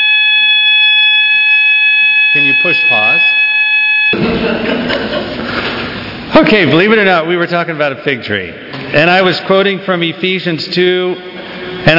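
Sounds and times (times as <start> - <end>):
fire alarm blaring: 0.0 - 4.2
speech: 2.4 - 3.4, 4.1 - 5.7, 6.4 - 11.9
laughter: 4.1 - 6.2.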